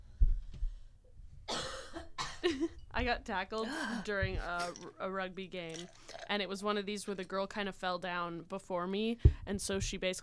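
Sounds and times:
person coughing harshly: 1.5s - 2.7s
speech: 2.5s - 10.2s.

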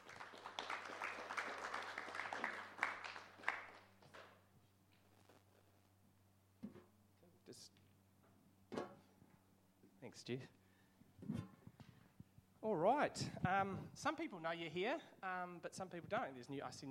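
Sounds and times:
audience applause: 0.0s - 4.1s
speech: 10.1s - 10.6s, 12.7s - 16.8s.

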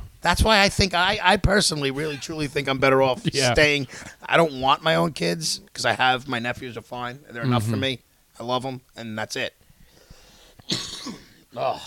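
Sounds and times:
speech: 0.2s - 9.6s, 10.7s - 11.8s
harsh raspy coughs: 10.6s - 11.8s.

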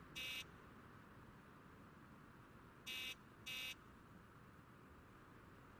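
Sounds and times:
harsh electric apartment door buzzer: 0.2s - 0.5s, 2.9s - 3.7s.

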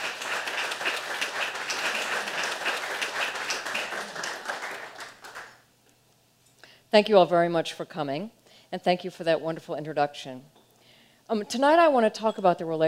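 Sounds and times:
room full of people applauding: 0.0s - 5.6s
speech: 6.9s - 10.6s, 11.3s - 12.8s.

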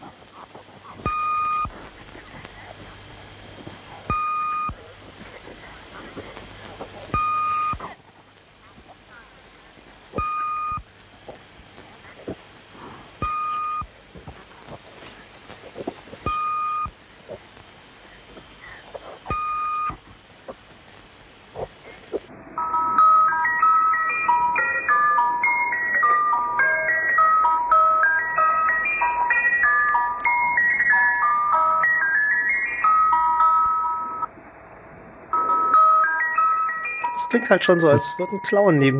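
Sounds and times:
crackling noise: 0.0s - 38.9s
hiss of shortwave radio static: 0.0s - 38.9s
tinny tinkling music-box melody broadcast by a numbers station: 22.6s - 34.3s, 35.4s - 38.9s
speech: 37.3s - 38.9s.

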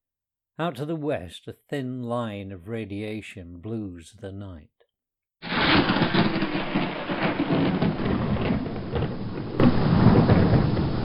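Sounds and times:
speech: 0.6s - 4.8s
distant thunder rumble: 5.4s - 11.0s
rain-like hiss: 5.4s - 11.0s.

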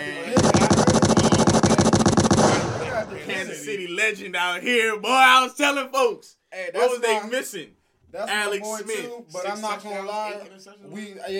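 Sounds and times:
rapid burst of gunshot sound effects like automatic fire: 0.4s - 3.4s
speech: 3.4s - 11.3s.

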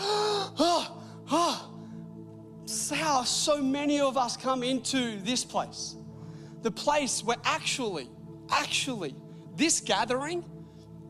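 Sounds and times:
person gasping for breath after holding it: 0.0s - 2.1s
speech: 3.2s - 6.0s, 6.6s - 10.5s.

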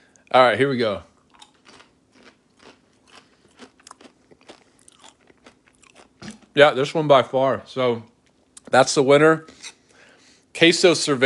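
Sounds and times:
speech: 0.4s - 1.1s, 6.6s - 8.1s, 8.7s - 9.6s, 10.6s - 11.2s
person biting and chewing food during a taste test: 1.2s - 6.6s.

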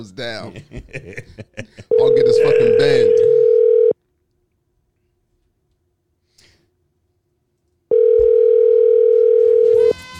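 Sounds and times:
speech: 0.0s - 3.6s
laughter: 0.4s - 2.0s
electronic ringback tone from an outgoing phone call: 1.9s - 4.0s, 7.9s - 9.9s.

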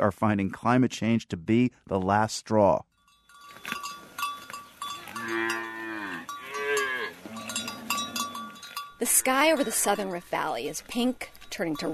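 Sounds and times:
speech: 0.0s - 2.9s, 9.0s - 11.9s
cowbells clanking and jingling on cattle in Kenya's Southern Rift Valley: 2.9s - 11.9s
herd of 50 cattle lowing at dusk in Kenya's Southern Rift Valley: 3.4s - 11.1s.

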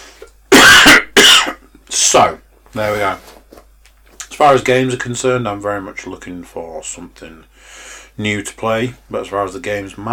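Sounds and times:
harsh raspy coughs: 0.5s - 1.8s
speech: 2.1s - 3.3s, 4.4s - 10.1s
faint breath: 7.5s - 8.2s.

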